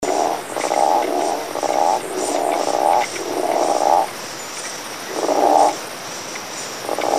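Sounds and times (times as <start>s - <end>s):
frog giving rasping pulsed croaks: 0.0s - 4.2s, 5.0s - 5.8s, 6.8s - 7.1s
steady high hiss: 0.0s - 7.1s.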